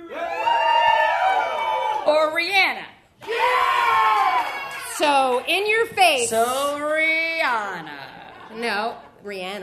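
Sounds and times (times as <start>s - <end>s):
live audience cheering in a vote: 0.0s - 2.3s, 3.2s - 5.4s
speech: 5.0s - 8.0s, 8.6s - 9.6s.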